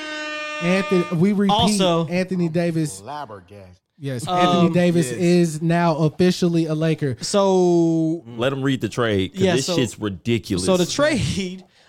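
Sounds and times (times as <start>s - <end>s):
loud steady air horn blast: 0.0s - 2.1s
speech: 0.6s - 11.7s
person shouting: 1.5s - 2.0s, 4.3s - 5.2s, 9.4s - 9.9s.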